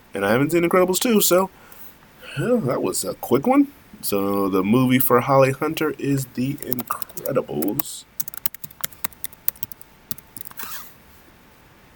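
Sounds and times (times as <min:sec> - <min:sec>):
speech: 0:00.1 - 0:01.7, 0:02.3 - 0:08.1
computer keyboard typing: 0:06.2 - 0:10.8.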